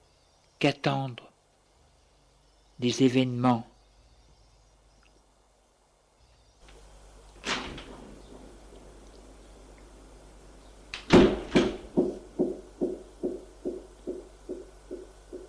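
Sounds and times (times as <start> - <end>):
speech: 0.6 - 1.2, 2.8 - 3.7
heavy door thud: 7.4 - 8.6, 11.0 - 14.2
knocks: 11.1 - 15.4.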